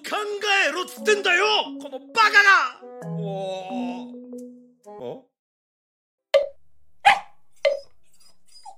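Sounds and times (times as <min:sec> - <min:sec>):
speech: 0:00.2 - 0:04.2
dog barking: 0:07.0 - 0:07.9
dog whimpering: 0:07.7 - 0:08.7.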